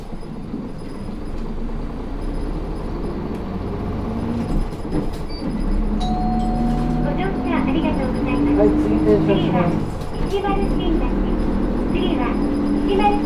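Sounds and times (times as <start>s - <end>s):
bus engine rumbling and whining as the bus pulls away from a stop: 0.0s - 13.2s
voices inside the bus cabin: 7.0s - 11.4s.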